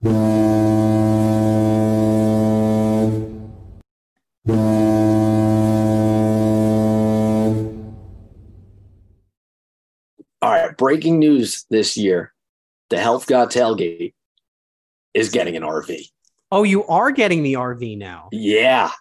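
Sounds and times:
air horn blasts: 0:00.0 - 0:03.8, 0:04.4 - 0:08.3
speech: 0:10.9 - 0:14.2, 0:15.1 - 0:18.9.

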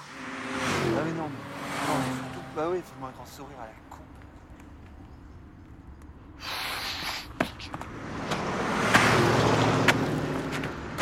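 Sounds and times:
small car passing by: 0:00.0 - 0:04.5, 0:07.7 - 0:11.0
speech: 0:02.6 - 0:04.0.

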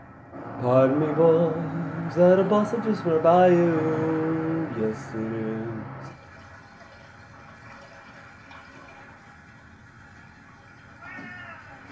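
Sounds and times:
speech: 0:00.6 - 0:06.2
cat meowing: 0:11.0 - 0:11.8.

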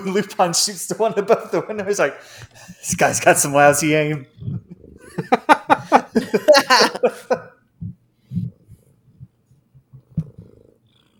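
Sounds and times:
speech: 0:00.0 - 0:04.6
cat purring: 0:04.2 - 0:05.3, 0:07.8 - 0:11.1
rhythmic laughter: 0:05.0 - 0:07.6.

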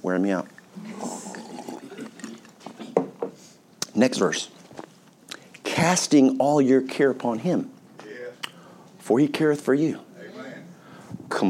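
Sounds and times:
speech: 0:00.0 - 0:01.2, 0:04.0 - 0:04.6, 0:05.8 - 0:07.8, 0:09.1 - 0:10.1
sharp gulps or clicks: 0:00.5 - 0:02.9
person drinking water: 0:00.5 - 0:03.0.

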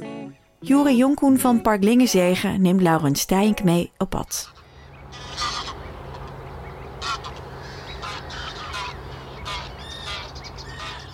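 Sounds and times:
speech: 0:00.6 - 0:04.6
steady low hum: 0:00.7 - 0:11.1
chorus of birds honking and cackling in a young reed marsh: 0:04.4 - 0:11.1.

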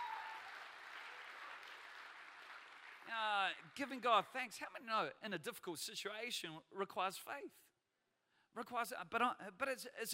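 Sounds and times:
audience clapping in praise: 0:00.0 - 0:04.3
speech: 0:03.1 - 0:07.7, 0:08.6 - 0:10.1.

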